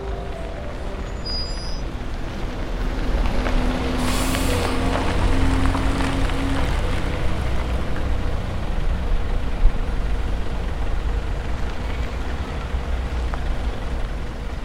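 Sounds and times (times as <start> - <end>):
large old rusty bus engine idling on a street: 0.0 - 3.0, 4.0 - 14.6
bus air brakes hissing while stopping: 4.0 - 4.8.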